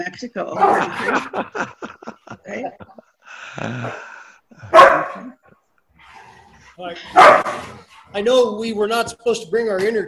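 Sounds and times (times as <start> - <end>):
laughter: 0.0 - 4.3
speech: 0.0 - 5.4, 6.8 - 10.0
pet dog barking inside a house: 0.6 - 0.9, 4.7 - 5.4, 7.1 - 7.8.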